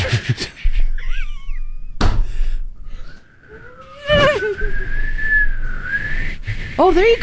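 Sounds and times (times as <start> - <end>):
laughter: 0.0 - 1.7, 3.8 - 4.8
dull knocking thumps: 2.0 - 2.4
person half-whistling to imitate wind through a draughty hallway: 3.0 - 7.2.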